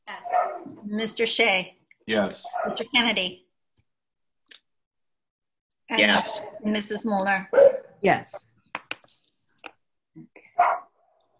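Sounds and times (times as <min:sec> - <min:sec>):
dog barking: 0:00.2 - 0:00.7, 0:02.4 - 0:02.8, 0:07.5 - 0:08.0, 0:10.6 - 0:10.9
speech: 0:00.9 - 0:03.4, 0:05.9 - 0:08.5.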